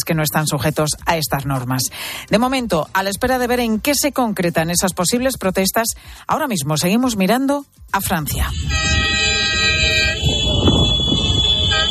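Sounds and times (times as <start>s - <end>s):
speech: 0.0s - 10.4s
convoy of hauliers' trucks honking horns heading to Paris: 8.5s - 11.8s
rumbling truck engines: 8.5s - 11.8s.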